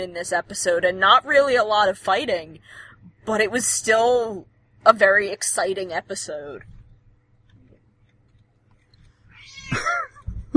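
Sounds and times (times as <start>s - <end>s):
speech: 0.0s - 6.8s
cat meowing: 9.3s - 10.0s.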